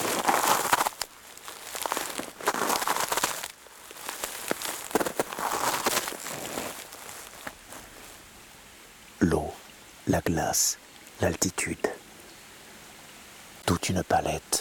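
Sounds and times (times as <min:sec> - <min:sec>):
footsteps crunching through crusted snow over dry leaves: 0:00.0 - 0:08.3
speech: 0:10.1 - 0:11.9, 0:13.8 - 0:14.5.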